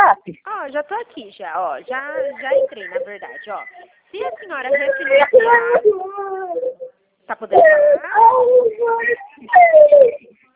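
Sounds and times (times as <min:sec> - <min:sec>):
speech: 0:00.2 - 0:10.3
baby crying: 0:01.9 - 0:06.9, 0:07.5 - 0:10.2.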